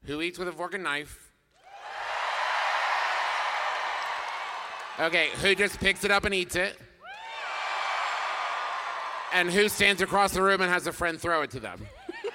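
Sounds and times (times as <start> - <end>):
speech: 0.1 - 1.3, 5.0 - 6.9, 9.3 - 12.0
live audience cheering and whooping: 1.6 - 6.3, 7.0 - 9.8.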